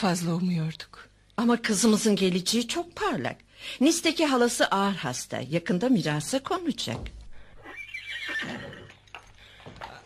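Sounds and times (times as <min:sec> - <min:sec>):
speech: 0:00.0 - 0:07.2
restless horse neighing: 0:07.5 - 0:10.0.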